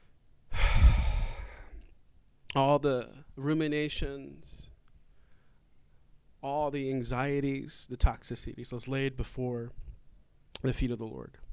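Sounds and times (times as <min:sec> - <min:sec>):
single long exhaled breath during a church service: 0:00.0 - 0:01.9
speech: 0:02.5 - 0:04.7, 0:06.4 - 0:09.9, 0:10.6 - 0:11.4.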